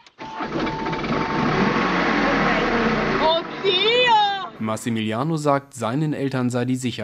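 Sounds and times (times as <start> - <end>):
microcar engine cranking, starting and revving: 0.2 - 5.0
speech: 4.6 - 7.0.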